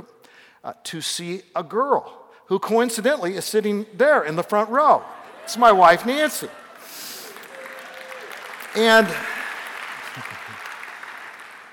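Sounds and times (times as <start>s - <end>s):
speech: 0.6s - 6.6s, 8.8s - 9.3s
audience applause: 6.4s - 11.7s.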